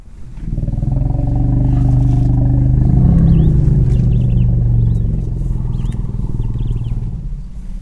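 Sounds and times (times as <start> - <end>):
elephant rumbling growl: 0.0 - 7.7
faint birds chirping: 0.0 - 7.7.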